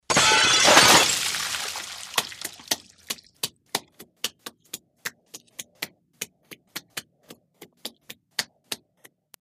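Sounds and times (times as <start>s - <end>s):
aquarium smashing: 0.0s - 3.2s
crashes: 0.1s - 3.0s
water pouring from aquarium: 0.6s - 3.3s.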